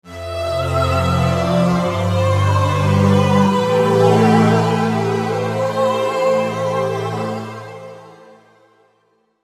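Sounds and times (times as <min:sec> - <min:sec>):
saw pad LA PCM synth: 0:00.1 - 0:07.6.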